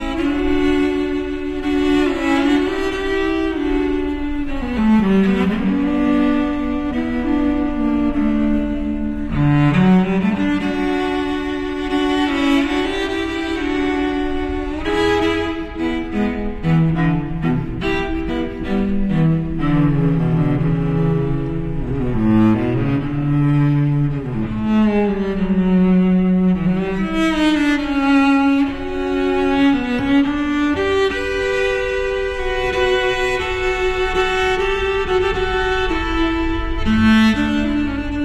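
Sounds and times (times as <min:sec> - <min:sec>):
cello playing a waltz: 0:00.0 - 0:38.2.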